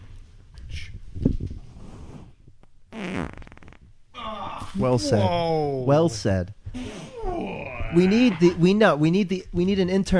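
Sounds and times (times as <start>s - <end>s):
fart: 1.7s - 3.9s, 6.7s - 7.2s
speech: 4.8s - 6.6s, 7.9s - 10.1s.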